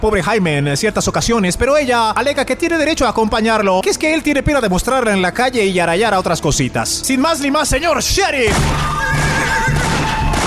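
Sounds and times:
speech: 0.0 - 9.8
horse whinnying: 8.8 - 10.4.

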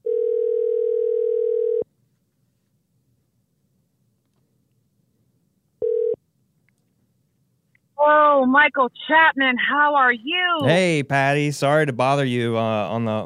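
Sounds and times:
telephone dial tone while placing a call: 0.0 - 1.8, 5.8 - 6.2
speech: 8.5 - 13.2.

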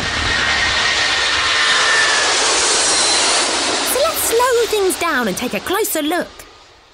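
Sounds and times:
propeller aircraft engine starting up and roaring: 0.0 - 6.9
speech: 4.8 - 6.4.

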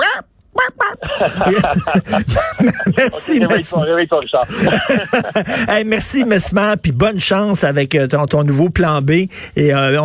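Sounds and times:
person imitating a clucking hen: 0.0 - 1.0
laughter: 0.0 - 6.4
speech: 1.2 - 10.0.

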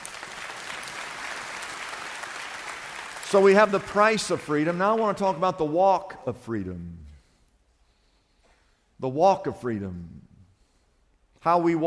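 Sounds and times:
audience applause: 0.0 - 5.0
speech: 3.3 - 7.0, 9.0 - 10.3, 11.4 - 11.8.

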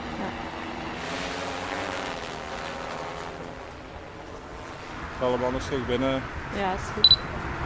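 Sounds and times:
camera drone motors buzzing while landing: 0.0 - 5.2
speech: 5.2 - 7.5.

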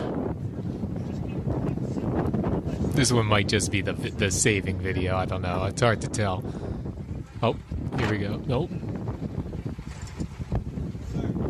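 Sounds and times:
wind buffeting a microphone in a played-back news video: 0.0 - 11.4
speech: 3.0 - 6.7, 7.4 - 9.0.

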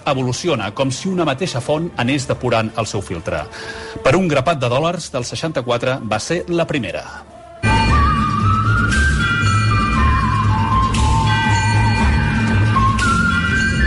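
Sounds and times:
speech: 0.0 - 7.3
dense steady musical backing: 0.0 - 13.8
whistled melody of a film theme: 7.5 - 13.8.

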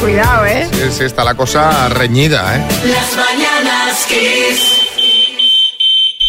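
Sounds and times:
speech: 0.0 - 4.7
shrill electronic fire alarm beeping: 4.5 - 6.2.

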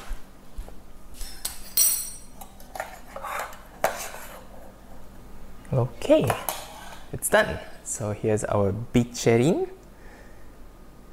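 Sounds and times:
serving spoons and cutlery clinking and clattering against dishes: 1.2 - 4.0
speech: 5.7 - 6.5, 7.1 - 9.8.

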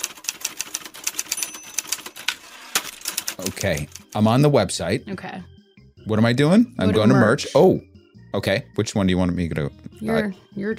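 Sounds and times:
typewriter typing: 0.0 - 4.2
speech: 3.4 - 10.7.

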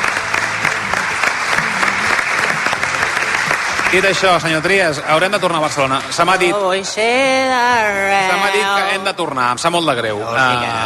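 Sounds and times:
audience applause: 0.0 - 6.9
speech: 3.9 - 10.8.

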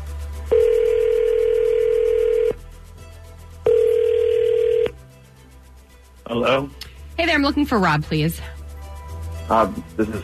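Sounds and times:
telephone line ringing out as a call is placed: 0.5 - 2.6, 3.7 - 5.0
speech: 6.6 - 8.6, 9.5 - 10.2.

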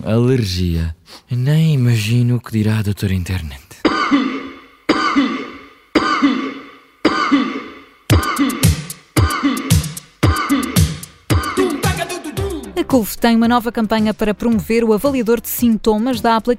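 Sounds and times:
speech: 0.0 - 4.2, 12.9 - 16.5
person coughing: 3.8 - 11.8.

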